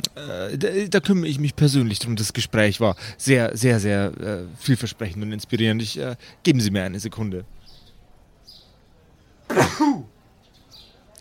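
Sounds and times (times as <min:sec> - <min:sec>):
speech: 0:00.0 - 0:07.6, 0:09.5 - 0:10.1
quiet hiss: 0:00.0 - 0:11.2
man sneezing: 0:09.5 - 0:10.1.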